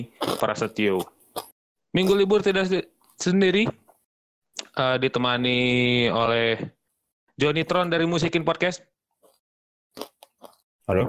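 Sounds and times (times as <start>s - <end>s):
speech: 0.0s - 1.2s, 1.9s - 3.8s, 4.8s - 6.8s, 7.4s - 8.9s, 10.9s - 11.0s
chewing food while eating: 0.0s - 2.4s, 9.2s - 10.6s.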